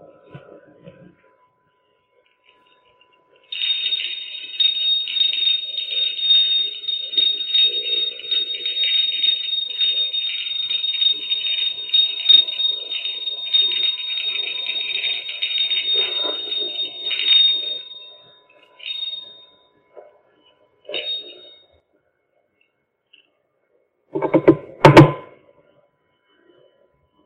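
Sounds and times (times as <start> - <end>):
small hand bell ringing: 2.4 - 19.8, 20.9 - 21.7.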